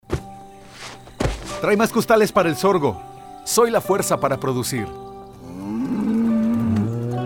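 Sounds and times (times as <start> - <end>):
speech: 1.6 - 5.1
cow mooing in a corral: 5.4 - 7.2.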